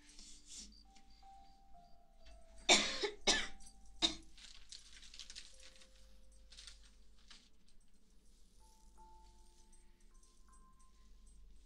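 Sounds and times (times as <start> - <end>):
faint steady hum: 0.0 - 11.6
loud rough breathy coughing: 2.7 - 4.3
light rustling: 3.6 - 11.6.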